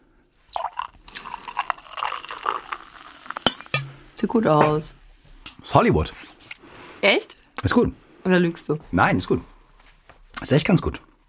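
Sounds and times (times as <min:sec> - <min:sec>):
sparkling wine poured into a hot pan to deglaze it: 0:00.5 - 0:04.9
speech: 0:04.2 - 0:05.0, 0:05.7 - 0:06.3, 0:07.0 - 0:09.5, 0:10.4 - 0:11.1.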